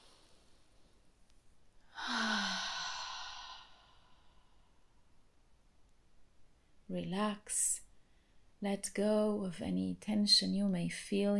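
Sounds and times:
faint hiss: 0:00.0 - 0:11.3
deep relaxation breath in through nose and out through mouth: 0:01.8 - 0:04.8
speech: 0:06.9 - 0:07.8, 0:08.6 - 0:11.3.

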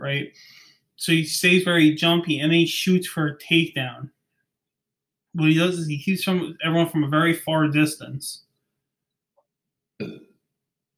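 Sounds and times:
speech: 0:00.0 - 0:04.2, 0:05.3 - 0:08.4, 0:10.0 - 0:10.2
burp: 0:10.0 - 0:10.4.

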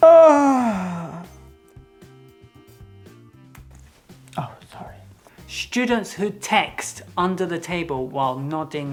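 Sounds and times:
loud drawn-out yawn: 0:00.0 - 0:01.4
speech: 0:05.6 - 0:08.9.

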